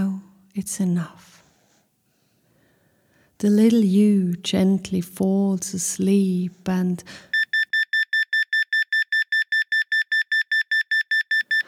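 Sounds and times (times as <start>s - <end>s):
speech: 0.6s - 1.4s, 3.4s - 7.3s
alarm clock ringing with rapid electronic beeps: 7.3s - 11.6s.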